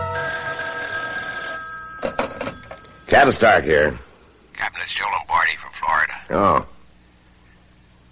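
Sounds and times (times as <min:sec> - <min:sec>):
telephone ringing with a buzzing electronic tone: 0:00.1 - 0:03.8
speech: 0:03.2 - 0:04.0, 0:04.8 - 0:05.1, 0:06.3 - 0:06.7.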